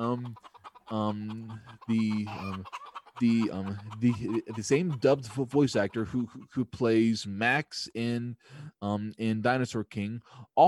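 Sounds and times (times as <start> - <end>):
chickens clucking and squawking: 0.0 - 7.2
speech: 0.0 - 10.6.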